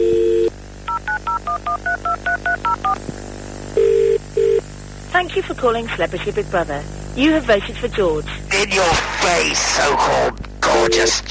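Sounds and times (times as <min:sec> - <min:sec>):
steady telephone dial tone: 0:00.0 - 0:03.0, 0:03.8 - 0:04.6
speech: 0:05.2 - 0:11.3.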